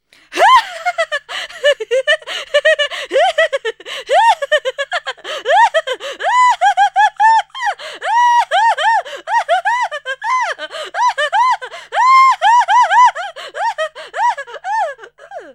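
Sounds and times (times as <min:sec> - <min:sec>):
insane witch giggling: 0:00.4 - 0:15.5.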